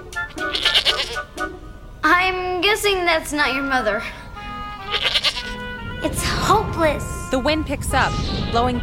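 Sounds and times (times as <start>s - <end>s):
goat bleating: 0.4s - 1.2s, 4.8s - 5.6s
speech: 2.7s - 4.2s, 6.0s - 8.8s.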